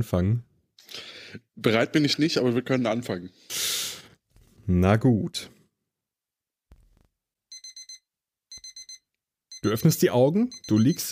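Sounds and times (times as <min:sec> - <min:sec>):
speech: 0:00.0 - 0:01.0, 0:01.6 - 0:03.6, 0:04.7 - 0:05.6, 0:09.6 - 0:11.1
alarm clock beeping in bright shrill tones: 0:07.5 - 0:11.1.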